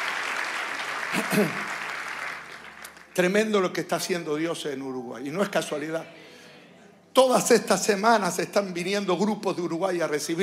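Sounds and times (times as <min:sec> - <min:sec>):
congregation applauding at a church worship service: 0:00.0 - 0:03.7
speech: 0:01.1 - 0:01.7, 0:03.2 - 0:06.2, 0:07.2 - 0:10.4.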